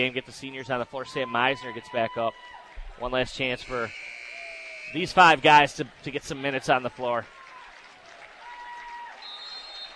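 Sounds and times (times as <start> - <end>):
speech: 0.0 - 4.2, 4.9 - 7.4
crowd applause at a basketball game: 2.5 - 9.9.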